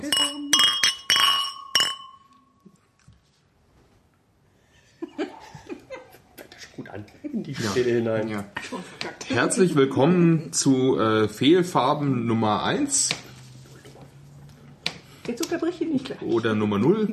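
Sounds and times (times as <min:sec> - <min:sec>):
glasses clinking in a toast: 0:00.0 - 0:02.6
people talking and laughing: 0:04.8 - 0:09.8
speech: 0:06.8 - 0:13.2, 0:15.3 - 0:17.1.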